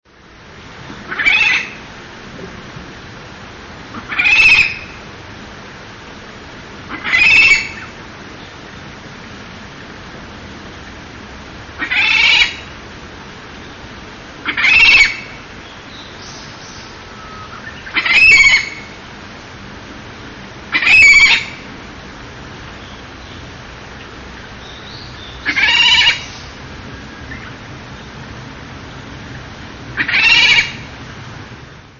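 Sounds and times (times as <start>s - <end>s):
Okinawa rail calling: 0.9s - 1.9s, 3.9s - 5.0s, 6.8s - 8.6s, 11.8s - 12.7s, 14.4s - 19.0s, 20.7s - 21.7s, 22.7s - 28.2s, 29.2s - 31.0s.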